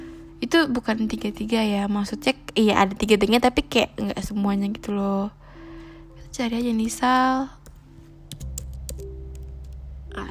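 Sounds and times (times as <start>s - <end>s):
steady low electrical hum: 0.0s - 10.3s
speech: 0.5s - 5.4s, 6.3s - 7.6s
typing on a laptop keyboard: 7.6s - 9.8s.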